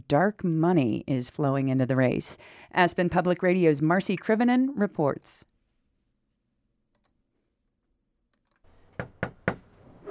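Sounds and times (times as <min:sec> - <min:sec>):
speech: 0:00.1 - 0:05.5
knocking on a house door: 0:09.0 - 0:09.6.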